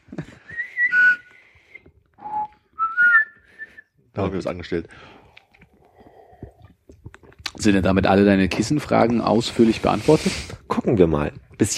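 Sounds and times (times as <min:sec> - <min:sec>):
person whistling a short wavering tune: 0:00.4 - 0:03.9
speech: 0:04.2 - 0:05.2, 0:07.6 - 0:11.7.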